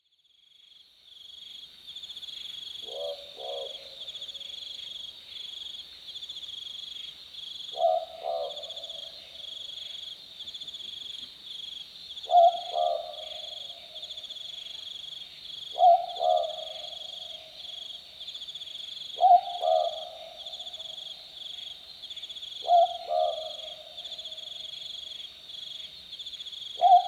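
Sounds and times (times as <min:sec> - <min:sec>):
boobook owl calling on a summer night: 0:02.8 - 0:03.9, 0:07.7 - 0:08.8, 0:12.2 - 0:13.6, 0:15.7 - 0:17.4, 0:19.2 - 0:20.6, 0:22.6 - 0:24.0, 0:26.8 - 0:27.0.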